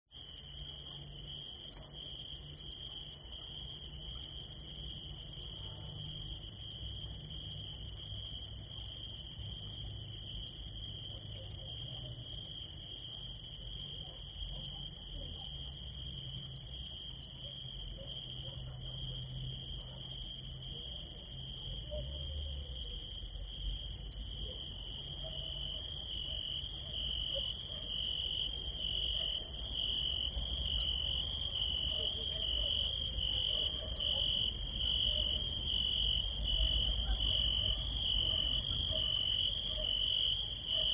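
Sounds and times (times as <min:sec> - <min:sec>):
night crickets chirping: 0:00.1 - 0:40.9.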